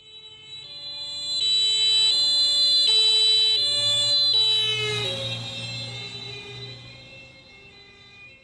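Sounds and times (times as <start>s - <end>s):
two-tone emergency vehicle siren passing with Doppler pitch drop: 0.0s - 8.4s.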